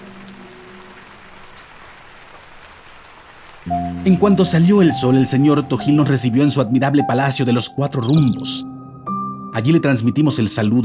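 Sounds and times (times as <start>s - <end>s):
steady rain falling on a surface: 0.0s - 7.0s
speech: 3.6s - 8.7s, 9.5s - 10.8s.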